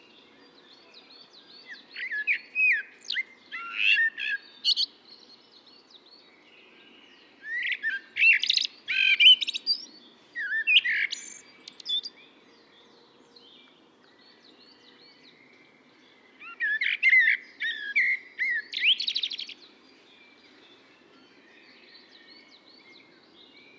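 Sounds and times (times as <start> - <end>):
common blackbird Turdus merula: 0.0 - 23.7.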